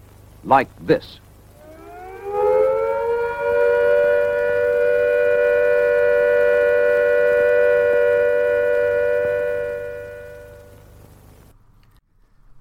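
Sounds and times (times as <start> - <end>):
speech: 0.4 - 1.2
civil defence siren all-clear steady note: 1.5 - 11.3.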